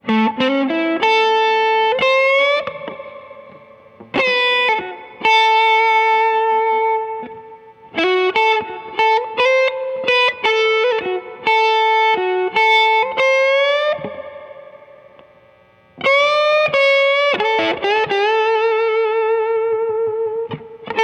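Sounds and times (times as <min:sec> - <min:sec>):
blues solo: 0:00.0 - 0:21.0.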